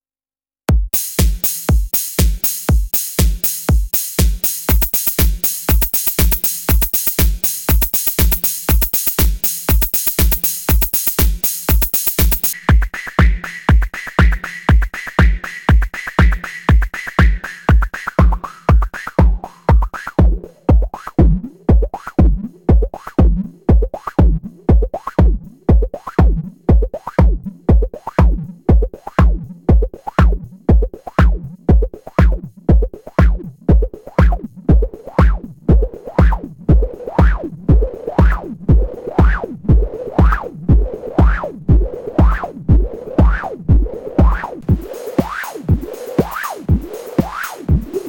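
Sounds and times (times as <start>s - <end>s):
drum loop: 0.7s - 48.0s.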